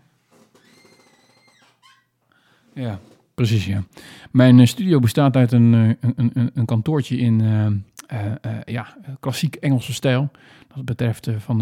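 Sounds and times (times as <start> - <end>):
leather chair creaking and squeaking as someone leans back: 0.3 - 2.1
speech: 2.8 - 11.6.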